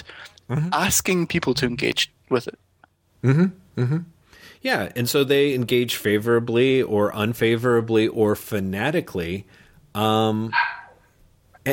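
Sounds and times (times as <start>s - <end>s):
speech: 0.5s - 10.6s
dog barking: 10.5s - 11.0s.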